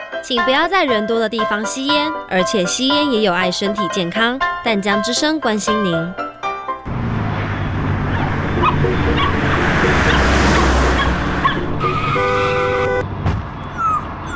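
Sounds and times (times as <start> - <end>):
speech: 0.3 - 6.2
car rushing or skidding: 6.9 - 13.0
loud traffic noise: 6.9 - 14.3
dog yelping and whimpering after being hit by a car: 8.0 - 9.4, 11.0 - 11.6, 13.7 - 14.3.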